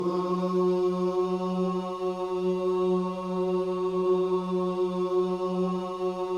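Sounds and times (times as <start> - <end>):
gospel ooh vocals: 0.0 - 6.3.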